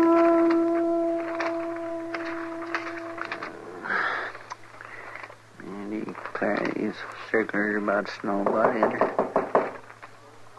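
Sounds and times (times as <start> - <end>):
quiet low hum: 0.0 - 8.2
speech: 6.4 - 9.3
knocking on a wooden door: 8.5 - 9.8.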